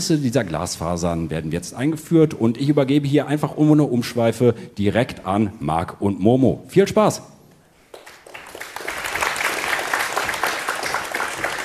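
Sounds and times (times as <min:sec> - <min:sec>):
speech: 0:00.0 - 0:07.3
audience applause: 0:07.9 - 0:11.6.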